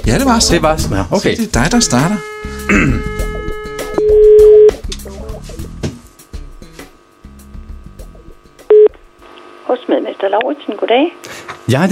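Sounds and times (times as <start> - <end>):
speech: 0.0 - 3.2, 10.0 - 11.9
telephone ringing tone: 2.2 - 4.8, 8.7 - 8.9
phone dialing tones: 3.2 - 4.8, 8.7 - 8.9.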